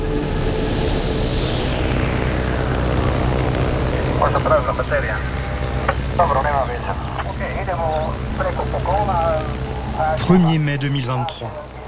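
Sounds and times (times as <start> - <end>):
small Cessna propeller plane flying over rainforest canopy in Colombia: 0.2 - 10.2
speech: 10.3 - 11.6.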